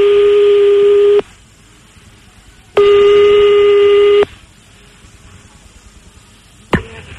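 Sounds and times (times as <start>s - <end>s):
long electronic telephone beeps while calling a number back: 0.0s - 1.3s, 2.8s - 4.3s.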